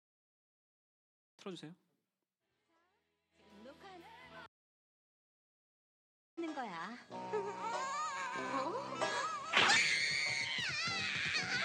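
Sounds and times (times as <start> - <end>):
speech: 1.4 - 1.8, 6.5 - 9.8
cartoon child wailing and screaming in a tantrum: 9.4 - 11.6.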